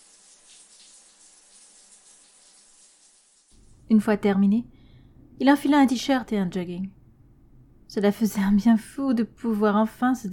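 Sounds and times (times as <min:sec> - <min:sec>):
shower tap running water: 0:00.0 - 0:03.7
speech: 0:03.9 - 0:04.7, 0:05.4 - 0:07.0, 0:07.9 - 0:10.3.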